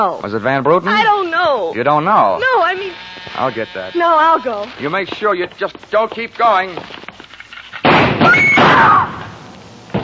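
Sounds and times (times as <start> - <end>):
speech: 0.0 - 7.0, 8.2 - 9.2
gunshots fired through a door: 7.8 - 10.0.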